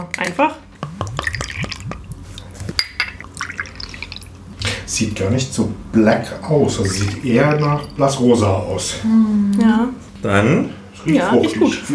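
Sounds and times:
speech: 0.0s - 0.6s, 4.9s - 11.9s
blackcurrant drink glugging as poured from a bottle into glasses: 0.8s - 9.8s
glass clink: 2.8s - 4.4s, 6.4s - 8.4s.

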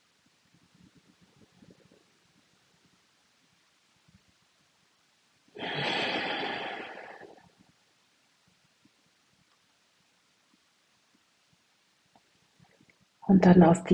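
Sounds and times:
long deep breath in: 5.6s - 7.4s
speech: 13.3s - 13.9s.

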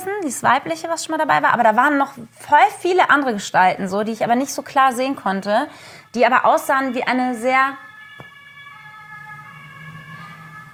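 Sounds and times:
speech: 0.1s - 7.8s
emergency vehicle siren passing: 5.8s - 10.7s.

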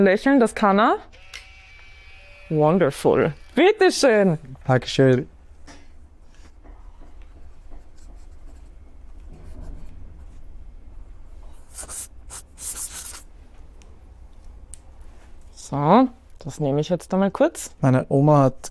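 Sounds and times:
speech: 0.0s - 1.4s, 2.5s - 5.3s, 15.7s - 18.6s
pen scratching on paper writing a guestbook entry: 11.7s - 13.2s.

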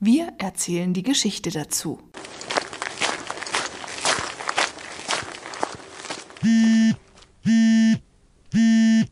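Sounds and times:
speech: 0.0s - 2.5s, 6.4s - 8.0s
footsteps walking: 2.2s - 7.5s
fitness tracker buzzing: 6.4s - 8.0s, 8.6s - 9.1s.

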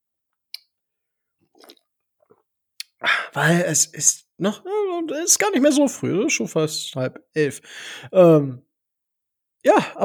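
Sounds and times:
person slurping a sip of coffee: 1.5s - 1.8s
soft mouth sounds: 1.6s - 1.8s
speech: 3.0s - 8.7s, 9.6s - 10.0s.

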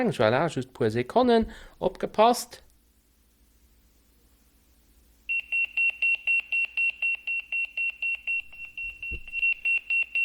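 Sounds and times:
speech: 0.0s - 2.6s
Motorola Pageboy 2 pager beeping as an alarm clock: 5.3s - 10.2s
soft thump: 8.8s - 9.4s.

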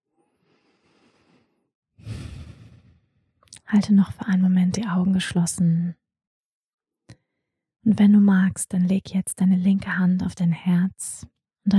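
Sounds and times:
deep breathing in and out: 0.4s - 3.2s
speech: 3.7s - 6.0s, 7.8s - 11.7s.

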